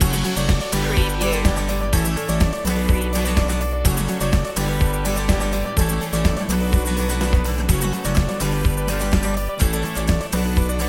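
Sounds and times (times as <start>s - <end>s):
inspirational acoustic guitar loop: 0.0s - 10.8s.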